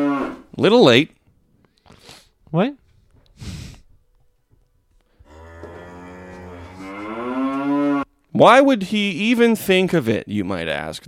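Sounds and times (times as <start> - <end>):
long loud cow moo sound effect: 0.0 - 0.4, 5.2 - 8.1
speech: 0.6 - 1.2, 2.5 - 2.8, 8.4 - 11.0
short breathy huff: 3.2 - 4.0.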